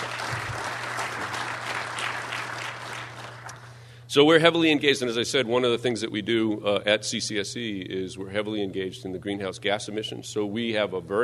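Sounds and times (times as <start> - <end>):
crowd clapping, a dense wash of many hands: 0.0 - 3.8
low steady hum: 0.0 - 11.2
speech: 4.1 - 11.2.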